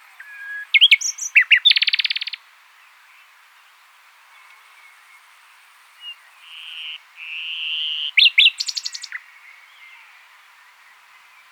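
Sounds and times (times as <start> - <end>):
common nightingale singing: 0.0 - 2.5, 6.0 - 11.4.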